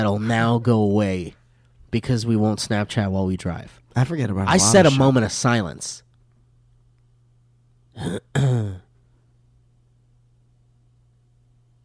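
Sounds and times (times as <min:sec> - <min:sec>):
speech: 0:00.0 - 0:06.0, 0:08.0 - 0:08.8
faint steady hum: 0:00.0 - 0:11.8
throat clearing: 0:08.0 - 0:08.9.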